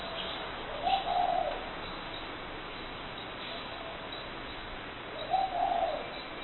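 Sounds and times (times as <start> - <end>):
bird cooing note: 0.0 - 1.8, 3.4 - 4.3, 5.1 - 6.3.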